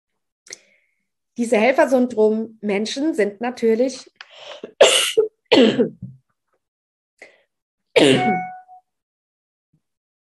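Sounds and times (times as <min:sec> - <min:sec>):
speech: 0:01.4 - 0:04.9, 0:05.6 - 0:06.2, 0:08.0 - 0:08.5
person coughing: 0:04.6 - 0:06.0, 0:08.0 - 0:08.5.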